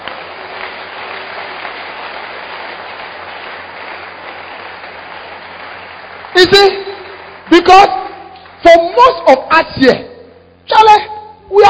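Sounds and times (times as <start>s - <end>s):
large crowd applauding: 0.0s - 9.2s
speech: 6.4s - 6.8s, 7.6s - 8.0s, 9.0s - 10.1s.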